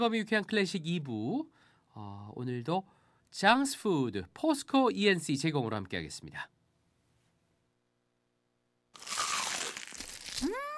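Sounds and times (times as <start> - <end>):
speech: 0.0 - 6.6
crispy bite into crumble-coated fried chicken: 9.0 - 10.7.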